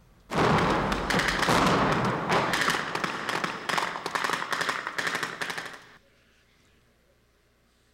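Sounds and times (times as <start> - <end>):
explosive blasts during a training exercise: 0.3 - 5.6
gunfire during a training exercise: 0.3 - 6.0.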